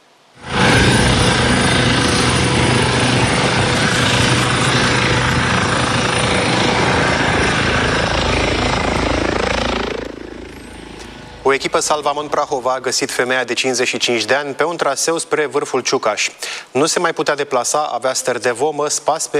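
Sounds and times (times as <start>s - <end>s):
rescue helicopter flying: 0.4s - 13.3s
speech: 11.6s - 19.3s.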